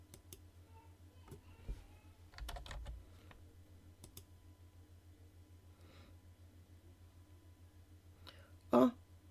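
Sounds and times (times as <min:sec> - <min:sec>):
low steady hum: 0:00.0 - 0:09.2
keyboard typing a credit card number: 0:02.3 - 0:03.4.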